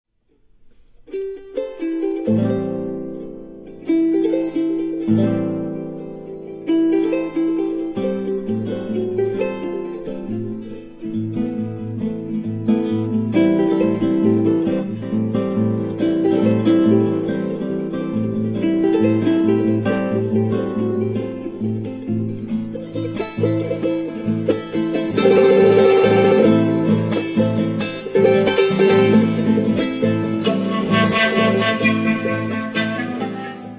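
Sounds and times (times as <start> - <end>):
charango playing with other instruments: 0.5 - 33.7.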